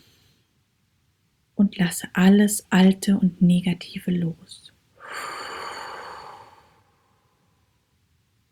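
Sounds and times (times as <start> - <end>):
speech: 1.6 - 5.4
deep breath in during a guided breathing meditation: 5.0 - 7.3.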